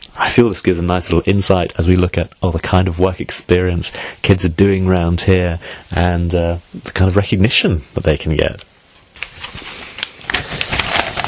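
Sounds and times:
speech: 0.4s - 8.7s
newspaper pages rustling: 9.1s - 11.2s.

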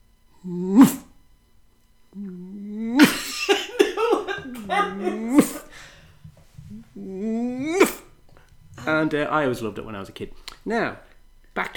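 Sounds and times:
speech: 0.4s - 1.0s, 8.9s - 11.7s
voice imitating a lion's growl in rough throaty bursts: 0.4s - 1.1s, 2.2s - 3.3s, 4.6s - 5.7s, 6.7s - 8.1s
laughter: 2.8s - 6.0s.

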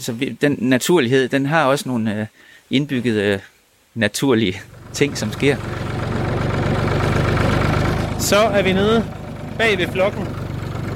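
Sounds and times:
speech: 0.0s - 5.8s, 8.2s - 10.4s
tractor engine idling: 4.6s - 10.9s.

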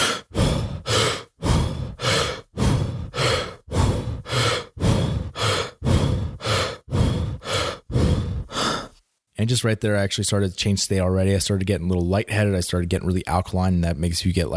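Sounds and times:
rapid breathing at one breath per two rope jumps: 0.0s - 9.1s
speech: 9.5s - 14.5s.

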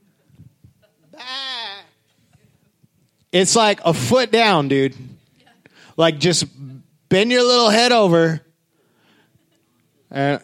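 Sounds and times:
sheep bleating: 1.2s - 2.0s
speech: 3.3s - 5.1s, 6.0s - 8.4s, 10.1s - 10.4s.

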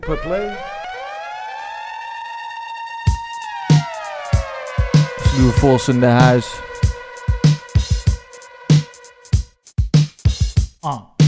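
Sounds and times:
loud steady siren tone wailing: 0.0s - 9.2s
speech: 0.1s - 0.7s, 5.4s - 6.7s, 10.8s - 11.1s
heavy low thumps at a regular beat: 4.9s - 8.2s.

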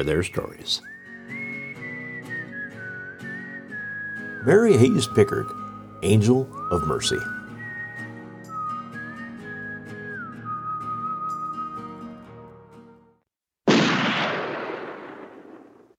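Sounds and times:
speech: 0.0s - 1.0s, 4.4s - 7.4s
soft musical passage with a whistled melody: 0.6s - 13.2s
loud gunshot with long echoing decay: 13.7s - 15.9s.

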